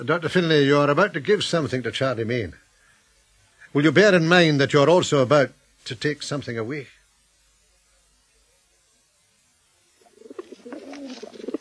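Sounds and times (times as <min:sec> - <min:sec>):
speech: 0:00.0 - 0:02.6, 0:03.7 - 0:07.0
soft throaty pigeon cooing: 0:10.0 - 0:11.6.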